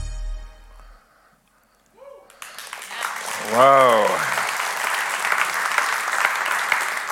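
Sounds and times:
audience in a church applauding: 0:02.2 - 0:07.0.

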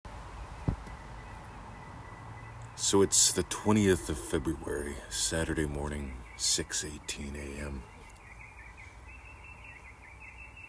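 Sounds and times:
chorus of birdsong in early morning in February: 0:00.1 - 0:10.6
speech: 0:02.8 - 0:07.9.

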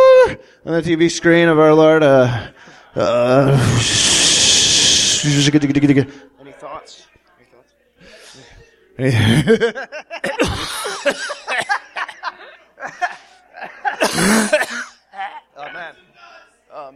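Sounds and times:
speech: 0:00.6 - 0:04.5, 0:05.2 - 0:07.0, 0:09.0 - 0:10.4, 0:14.0 - 0:14.9
coughing: 0:09.0 - 0:15.9
laughter: 0:09.1 - 0:14.6
throat clearing: 0:14.0 - 0:15.4.

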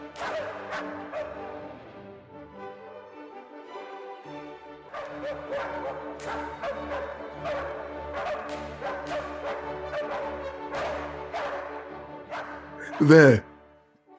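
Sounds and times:
dogs barking and yipping: 0:00.2 - 0:01.6, 0:04.9 - 0:13.0
speech: 0:05.3 - 0:11.7, 0:13.0 - 0:13.5.

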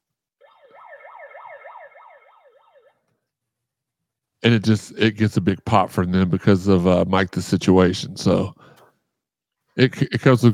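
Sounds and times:
megaphone siren wailing in rapid up-and-down sweeps: 0:00.4 - 0:03.0
speech: 0:04.4 - 0:08.6, 0:09.8 - 0:10.5.

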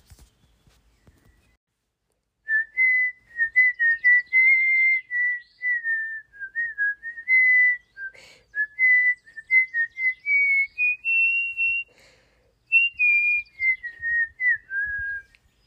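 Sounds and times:
person whistling a familiar tune: 0:02.5 - 0:12.0, 0:12.7 - 0:15.4.

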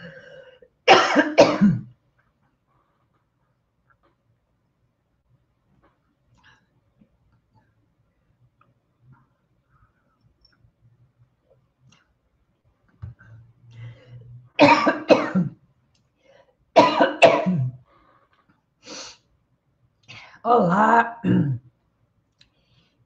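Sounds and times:
person coughing while hosting a live stream: 0:00.9 - 0:01.9, 0:14.6 - 0:15.5, 0:16.8 - 0:17.8, 0:21.2 - 0:21.6
speech: 0:20.5 - 0:21.6.

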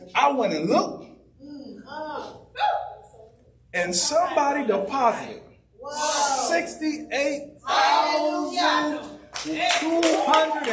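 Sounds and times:
speech: 0:00.1 - 0:01.1, 0:03.7 - 0:10.7
congregation cheering at a church service: 0:07.6 - 0:10.7
congregation applauding at a church service: 0:09.3 - 0:10.7.

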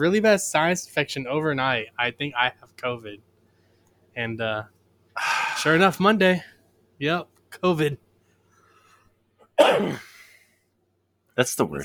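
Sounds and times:
speech: 0:00.0 - 0:03.3, 0:04.2 - 0:08.0, 0:09.6 - 0:10.1, 0:11.4 - 0:11.8
sharp forceful raspy cough: 0:09.6 - 0:10.3.

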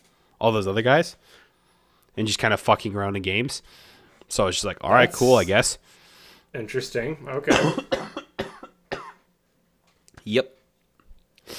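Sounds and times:
speech: 0:00.4 - 0:01.4, 0:02.2 - 0:08.0, 0:10.3 - 0:10.6
harsh coughing: 0:07.5 - 0:09.3.

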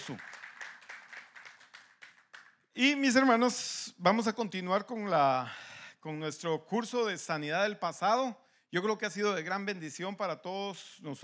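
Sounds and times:
speech: 0:00.0 - 0:00.4, 0:02.8 - 0:11.2
audience applauding: 0:00.0 - 0:02.6.

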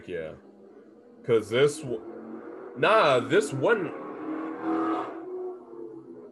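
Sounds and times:
speech: 0:00.0 - 0:00.5, 0:01.2 - 0:02.2, 0:02.8 - 0:04.0, 0:04.6 - 0:05.2
car engine hum passing by: 0:01.3 - 0:06.3.

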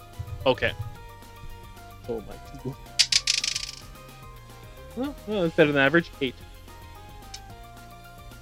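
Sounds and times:
speech: 0:00.4 - 0:00.9, 0:02.1 - 0:02.9, 0:05.0 - 0:06.5
charm dice tumbling across a hard tabletop: 0:03.0 - 0:03.9.

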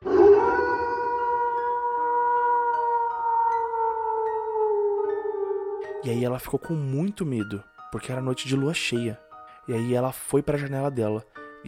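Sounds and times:
distant wolf-like howl: 0:00.0 - 0:06.1
speech: 0:06.0 - 0:11.6.

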